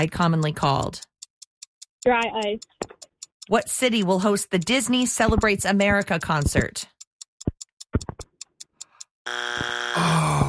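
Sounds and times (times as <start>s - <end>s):
speech: 0.0s - 1.1s, 2.0s - 2.8s, 3.5s - 7.0s
game show countdown ticking: 0.0s - 9.9s
game show time-up buzzer: 9.2s - 10.4s.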